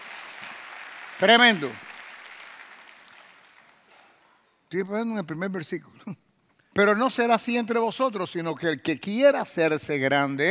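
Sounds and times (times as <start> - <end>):
audience applause: 0.0 - 3.9
speech: 1.2 - 1.8, 4.7 - 6.2, 6.8 - 10.4.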